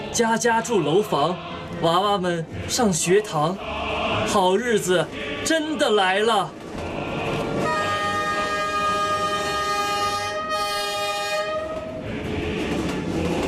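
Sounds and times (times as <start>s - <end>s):
electric multiple-unit passenger train rushing past: 0.0s - 13.4s
speech: 0.2s - 6.6s
electric multiple-unit train horn blaring: 7.6s - 12.0s.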